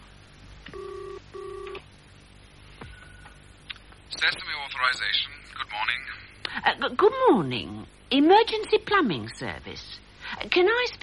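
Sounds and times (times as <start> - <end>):
telephone ringback tones heard through a handset: 0.7 - 1.8
speech: 4.1 - 11.0.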